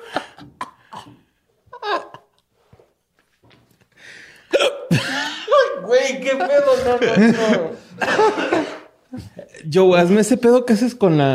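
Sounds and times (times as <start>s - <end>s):
laughter: 1.8s - 2.4s, 4.9s - 9.5s
person hiccuping: 4.5s - 5.1s
speech: 6.1s - 11.3s.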